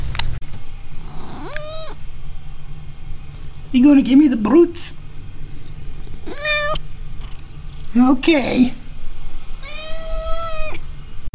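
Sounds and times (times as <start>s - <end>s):
cat meowing: 1.0s - 2.0s, 6.2s - 6.8s, 9.6s - 10.8s
speech: 3.7s - 5.0s, 8.0s - 8.8s.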